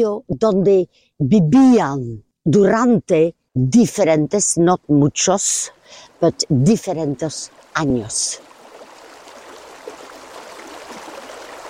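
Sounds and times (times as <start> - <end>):
speech: 0.0 - 8.5
river water flowing along the bank: 5.7 - 11.6.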